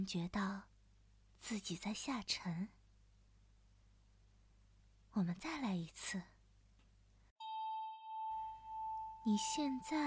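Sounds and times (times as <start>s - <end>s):
speech: 0.0s - 0.7s, 1.4s - 2.8s, 5.2s - 6.3s, 9.2s - 10.0s
single bell chime: 7.4s - 10.0s.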